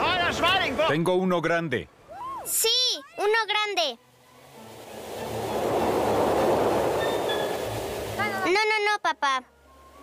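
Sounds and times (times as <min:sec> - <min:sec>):
speech: 0:00.7 - 0:04.1, 0:08.5 - 0:09.5
train passing during a riverside fishing trip: 0:04.4 - 0:08.5.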